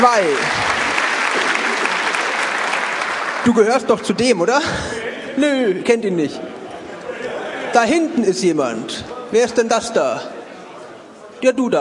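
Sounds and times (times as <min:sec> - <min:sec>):
speech: 0:00.0 - 0:00.7, 0:03.4 - 0:06.5, 0:07.7 - 0:10.4, 0:11.4 - 0:11.7
audience applause: 0:00.0 - 0:04.8.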